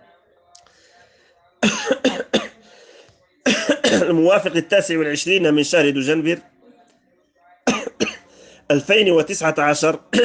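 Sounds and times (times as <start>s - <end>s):
faint murmuring: 0.0s - 10.2s
speech: 1.6s - 2.4s, 3.9s - 6.5s, 8.7s - 10.2s
person coughing during a lesson in cold weather: 1.6s - 2.6s, 3.5s - 4.2s, 7.7s - 8.2s.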